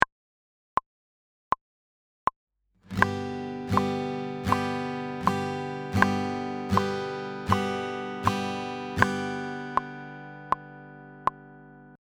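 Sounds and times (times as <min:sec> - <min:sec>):
guitar strums on each beat: 0:02.9 - 0:12.0.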